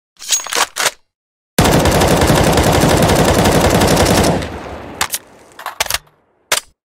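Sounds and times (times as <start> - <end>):
M4A1 rifle firing: 1.6 - 5.6.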